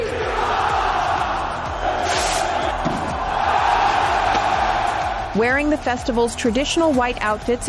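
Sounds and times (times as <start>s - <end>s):
people shouting: 0.0s - 5.4s
crowd of revelers cheering and chanting in Pamplona's consistorial square at San Fermín Festival: 0.0s - 7.6s
speech: 5.4s - 7.6s.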